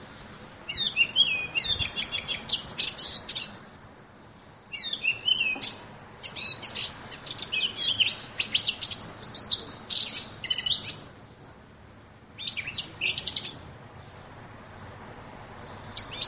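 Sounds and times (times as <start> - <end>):
Eurasian blackcap song of rapid high chattering and warbled notes: 0.0 - 16.2.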